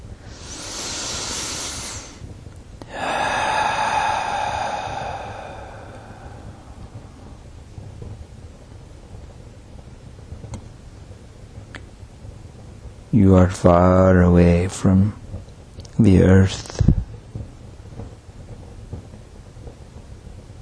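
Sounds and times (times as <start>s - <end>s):
low steady hum: 0.0s - 18.7s
deep breath: 0.1s - 7.6s
speech: 13.2s - 15.2s, 16.0s - 16.9s.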